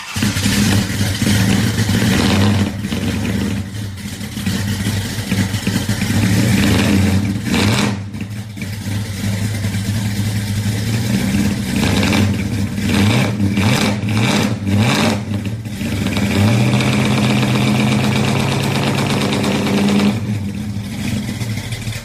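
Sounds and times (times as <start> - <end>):
1969 Dodge Charger engine revving: 0.0 - 22.0.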